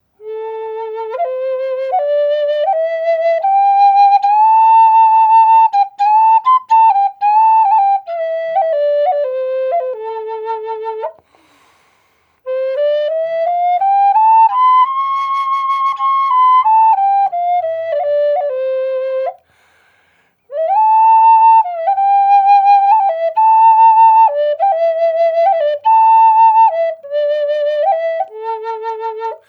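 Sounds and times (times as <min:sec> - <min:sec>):
flutes playing in A minor, dry: 0:00.2 - 0:11.8, 0:12.4 - 0:19.5, 0:20.5 - 0:29.4.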